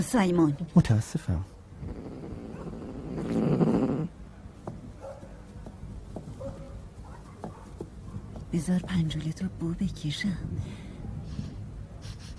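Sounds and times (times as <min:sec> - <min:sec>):
speech: 0:00.0 - 0:02.0, 0:08.5 - 0:10.8
voice imitating a cat's purr: 0:01.8 - 0:04.1.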